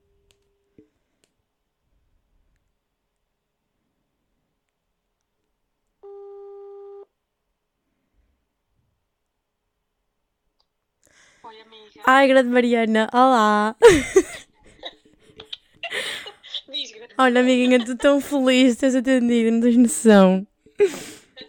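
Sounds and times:
telephone ringing tone while calling someone: 6.0 - 7.1
speech: 11.4 - 14.4, 17.2 - 21.2
laughter: 13.8 - 18.7, 20.8 - 21.4.

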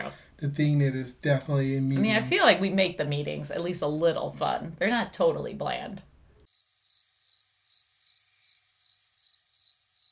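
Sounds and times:
speech: 0.4 - 6.1
cricket chirping: 6.4 - 10.0.

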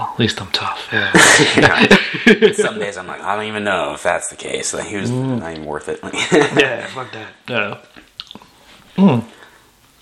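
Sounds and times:
speech: 0.0 - 8.0, 9.0 - 9.4
laughter: 0.9 - 3.1, 6.1 - 7.3
soft mouth clicks: 7.9 - 8.5.

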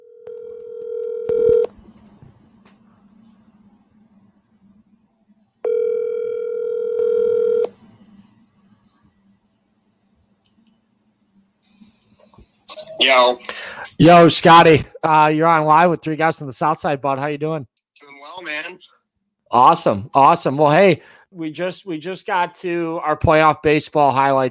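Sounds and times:
telephone tones as a call is placed: 0.0 - 1.7, 5.6 - 7.7
speech: 13.0 - 17.7, 19.5 - 24.4.

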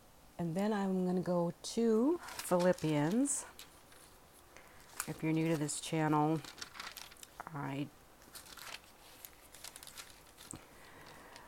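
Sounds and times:
low steady hiss: 0.0 - 11.4
speech: 0.4 - 3.6, 5.1 - 6.6, 7.5 - 8.0
pages of a Bible turned by hand: 2.2 - 7.6, 8.2 - 11.4.

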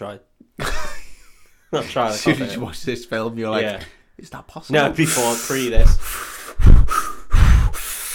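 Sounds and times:
speech: 0.0 - 0.9, 1.7 - 6.3
deep noisy inhales through the nose and mouth: 5.0 - 8.1.

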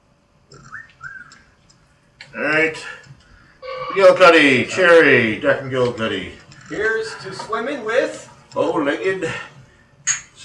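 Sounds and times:
speech: 2.3 - 3.1, 3.9 - 9.5
whistle blasts: 3.6 - 5.0.

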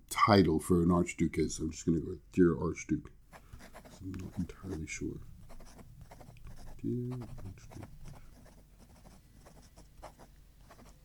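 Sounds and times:
speech: 0.2 - 3.2, 4.0 - 5.3, 6.8 - 7.9
pen scratching on paper writing a condolence letter: 3.3 - 11.0.

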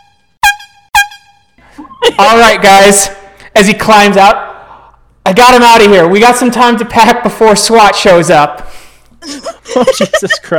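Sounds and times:
loud blaring air horn blasts: 0.0 - 1.6
speech: 2.2 - 4.4, 5.4 - 10.5
laughter: 9.2 - 10.5.

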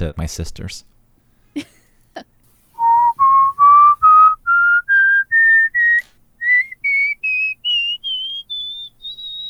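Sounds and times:
speech: 0.0 - 0.9, 1.5 - 2.3
person whistling a rising scale: 2.8 - 9.4.

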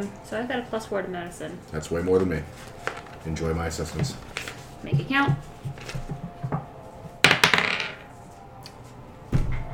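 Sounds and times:
speech: 0.0 - 5.4
dice rolling on a hard tabletop for a tabletop role-playing game: 7.2 - 8.1.

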